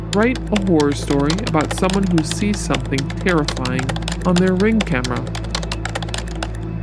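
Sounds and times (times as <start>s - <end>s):
speech: 0.1s - 5.5s
typing on a computer keyboard: 0.1s - 6.7s.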